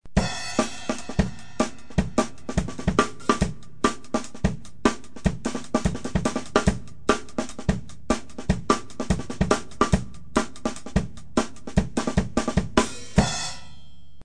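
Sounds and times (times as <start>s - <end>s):
breakbeat drums: 0.1s - 13.9s.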